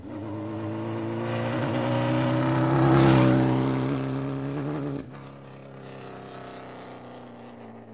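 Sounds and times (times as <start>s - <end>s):
motorcycle passing: 0.0s - 7.9s.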